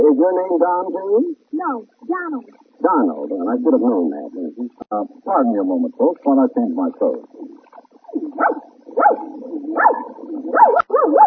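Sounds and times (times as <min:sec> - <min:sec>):
speech: 0:00.0 - 0:11.2
small dog yapping: 0:08.4 - 0:11.2.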